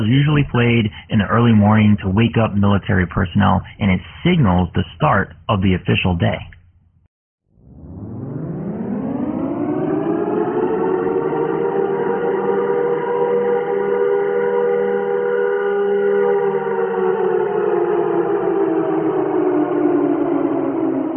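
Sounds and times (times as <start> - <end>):
speech: 0.0 - 6.6
loud outdoor civil defense warning siren wailing: 7.5 - 21.1.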